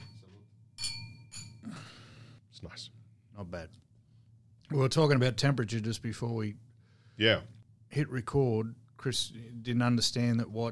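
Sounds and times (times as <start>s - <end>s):
wine glasses clinking in a toast: 0.0s - 1.7s
speech: 2.6s - 3.9s, 4.7s - 10.6s.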